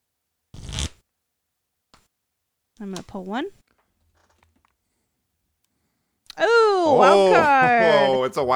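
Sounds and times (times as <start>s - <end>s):
deck of cards shuffled: 0.6s - 1.0s
speech: 2.8s - 3.6s, 6.9s - 8.5s
laughter: 6.4s - 8.5s.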